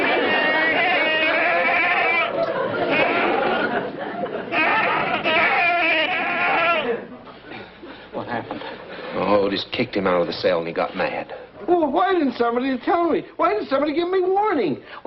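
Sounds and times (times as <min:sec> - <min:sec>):
goat bleating: 0:00.0 - 0:03.8, 0:04.5 - 0:07.1
laughter: 0:00.0 - 0:08.9
speech: 0:09.8 - 0:15.0.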